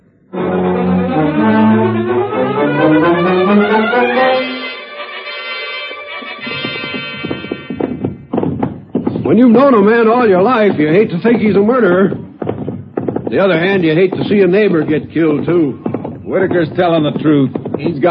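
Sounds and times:
swelling orchestral music cue: 0.3 - 7.8
horses' hooves clip-clopping at a trot: 6.4 - 18.1
speech: 9.4 - 12.2, 13.3 - 18.1.

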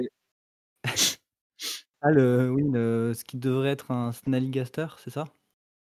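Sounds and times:
person speaking with a slight laugh: 0.9 - 1.2
single sharp sneeze: 0.9 - 1.8
breathy puff: 0.9 - 1.9
speech: 2.0 - 5.4.

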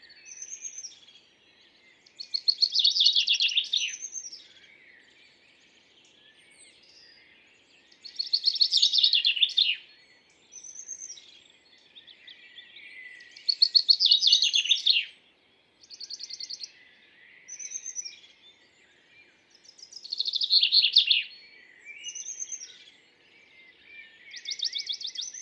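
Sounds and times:
Western Bonelli's warbler singing: 0.0 - 25.4
faint outdoor hiss: 0.0 - 25.4.

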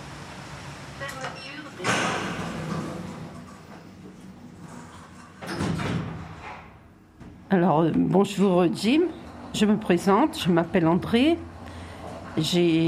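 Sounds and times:
sliding door opening with a rushing rumble: 0.0 - 6.9, 11.5 - 12.8
steady noise: 0.0 - 12.8
speech: 7.5 - 11.5, 12.4 - 12.8.

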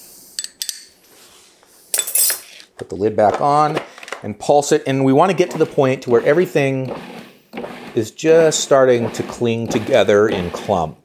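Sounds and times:
tablespoon clinking while scooping an ingredient in a kitchen: 0.4 - 1.0
speech: 2.8 - 7.1, 8.0 - 11.0.

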